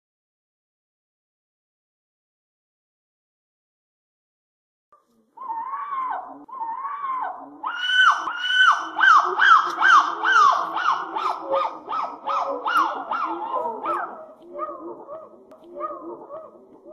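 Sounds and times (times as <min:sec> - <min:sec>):
monkey hoarse hoots and harsh rhythmic cries: 0:05.4 - 0:16.9.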